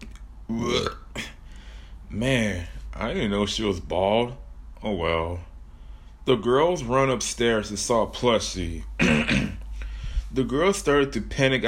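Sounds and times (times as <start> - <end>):
loud throaty burp: 0.5 - 1.4, 9.0 - 9.6
breathy exhale: 1.4 - 2.0, 9.7 - 10.3
speech: 2.2 - 5.5, 6.3 - 9.6, 10.3 - 11.6.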